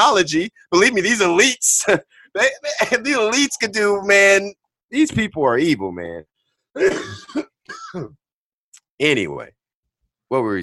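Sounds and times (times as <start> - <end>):
speech: 0.0 - 8.2, 9.0 - 9.6, 10.3 - 10.6
person coughing: 6.8 - 8.2.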